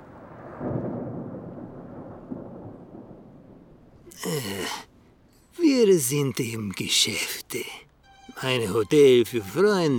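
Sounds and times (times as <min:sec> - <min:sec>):
deep rumbling thunder clap: 0:00.0 - 0:04.0
speech: 0:04.2 - 0:04.9, 0:05.8 - 0:09.9.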